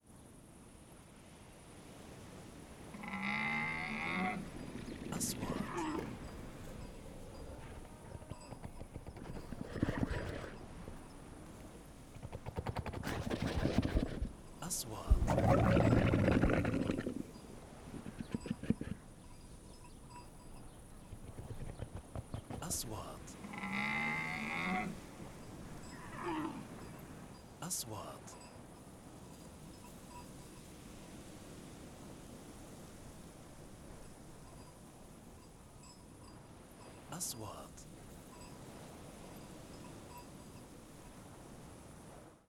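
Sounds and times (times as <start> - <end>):
camels vocalizing: 3.0 - 11.0, 12.1 - 14.4, 15.1 - 19.2, 21.0 - 25.1, 25.9 - 26.8.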